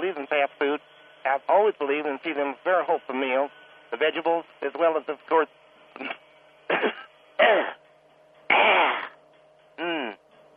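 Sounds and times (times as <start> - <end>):
faint steady hum: 0.0 - 10.5
speech: 0.3 - 6.1
person clearing throat: 6.0 - 7.8, 8.5 - 9.2, 9.8 - 10.2.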